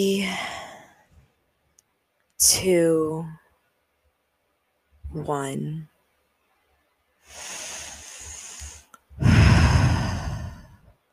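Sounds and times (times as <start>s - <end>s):
speech: 0.0s - 0.5s, 2.4s - 3.4s, 5.2s - 5.9s
slow deep breath: 7.2s - 11.0s.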